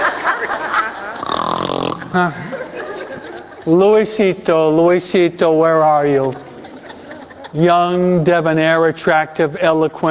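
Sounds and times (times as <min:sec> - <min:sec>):
laughter: 0:00.0 - 0:04.1, 0:06.0 - 0:08.2
overweight man snoring loudly with guttural snorting breaths: 0:01.2 - 0:02.3
speech: 0:02.1 - 0:02.4, 0:03.6 - 0:06.5, 0:07.5 - 0:10.0.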